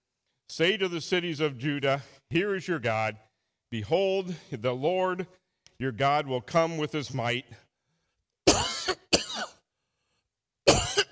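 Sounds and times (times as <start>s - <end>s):
speech: 0.6s - 7.6s
harsh coughing with throat clearing: 8.5s - 9.6s, 10.7s - 11.0s.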